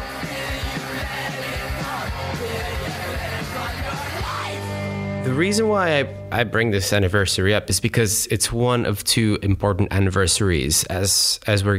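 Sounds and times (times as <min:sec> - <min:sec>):
protest crowd shouting slogans: 0:00.0 - 0:04.7
speech: 0:05.3 - 0:11.7.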